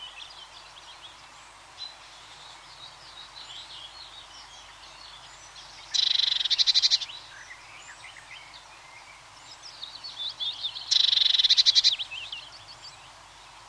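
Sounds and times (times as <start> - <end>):
bird twittering: 5.9 - 7.1, 10.9 - 12.3.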